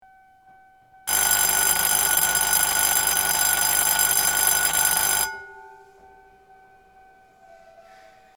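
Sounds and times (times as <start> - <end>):
Yoshiwarahoncho bell ringing: 1.1 - 6.0.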